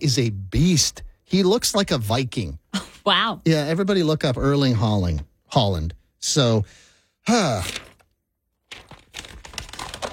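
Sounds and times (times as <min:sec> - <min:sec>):
speech: 0:00.0 - 0:07.9
paper sheet being crumpled and ripped: 0:07.4 - 0:10.1.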